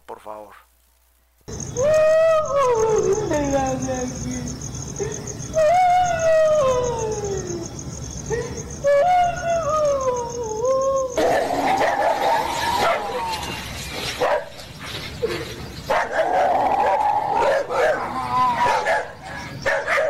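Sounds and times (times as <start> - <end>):
steady high hiss: 0.0 - 16.0
speech: 0.2 - 0.7, 1.5 - 2.0, 3.3 - 5.9
loud heart-rending wailing cries: 1.8 - 13.9, 15.2 - 20.0.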